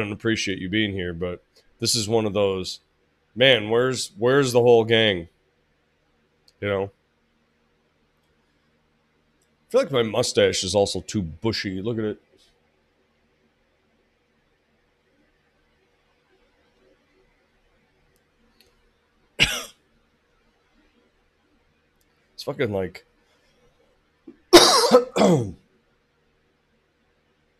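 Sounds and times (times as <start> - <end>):
speech: 0.0 - 5.3, 6.6 - 7.0, 9.7 - 12.3, 22.5 - 23.1, 25.2 - 25.6
harsh chesty cough from chest congestion: 19.4 - 19.8, 24.3 - 25.6.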